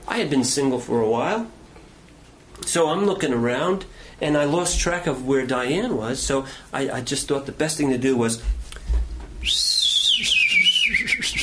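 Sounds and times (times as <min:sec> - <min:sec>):
speech: 0:00.2 - 0:01.6, 0:02.6 - 0:08.6, 0:09.4 - 0:10.3
person whistling a single sustained note: 0:09.4 - 0:11.4.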